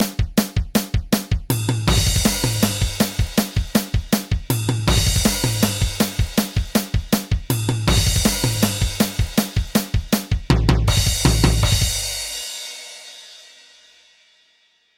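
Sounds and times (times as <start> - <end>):
drum intro: 0.0 - 12.8.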